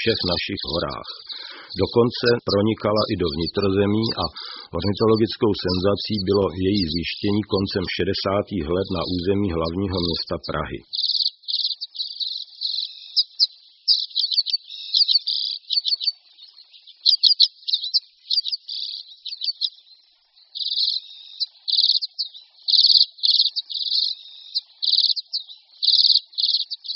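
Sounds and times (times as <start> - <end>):
speech: 0.0 - 11.1
common redpoll singing and calling: 0.0 - 26.9.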